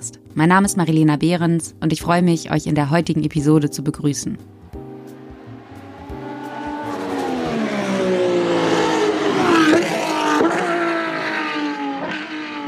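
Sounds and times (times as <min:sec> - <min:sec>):
speech: 0:00.4 - 0:04.6
fast race car engines roaring and revving: 0:05.0 - 0:12.6.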